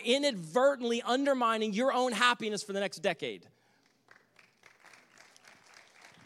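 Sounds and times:
speech: 0.0 - 3.6
polite scattered golf-style applause from a small audience: 3.8 - 6.2.

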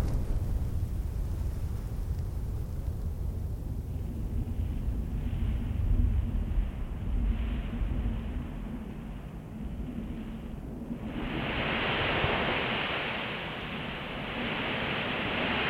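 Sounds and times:
faint constant hum: 0.0 - 15.6
heavy steady low rumble in the desert: 0.0 - 15.6
soft hiss into a louder rushing wash: 5.2 - 15.6.

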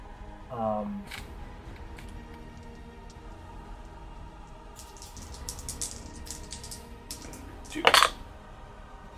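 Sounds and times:
speech: 0.5 - 1.3
dice rolling on a tabletop in a tabletop role-playing game: 4.8 - 8.2.

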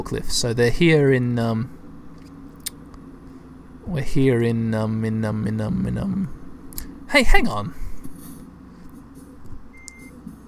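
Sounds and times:
speech: 0.0 - 1.8, 3.9 - 6.4, 7.1 - 7.8
steady low rumble of a car's engine heard from inside the car: 0.0 - 10.4
short high electronic reversing beep of a car: 9.7 - 10.4.

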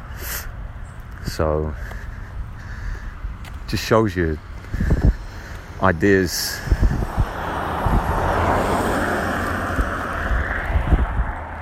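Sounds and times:
speech: 1.3 - 2.0, 3.7 - 4.9, 5.8 - 6.8
car passing by: 5.9 - 11.6.

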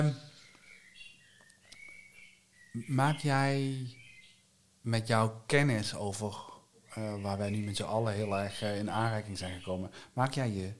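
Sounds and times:
speech: 0.0 - 0.2, 2.8 - 4.0, 4.8 - 10.7
bird clock chiming with recorded blackbird song: 0.4 - 4.4, 6.9 - 9.9.

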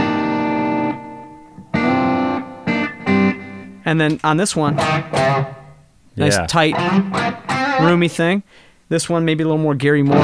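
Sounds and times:
clean electric guitar strumming chords with reverb: 0.0 - 3.8, 4.7 - 5.8, 6.7 - 8.0, 10.1 - 10.2
speech: 3.9 - 5.6, 6.2 - 10.2.

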